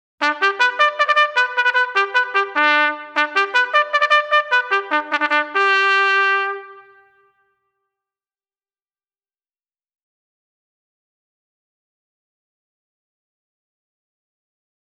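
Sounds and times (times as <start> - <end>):
bugle call: 0.2 - 7.3.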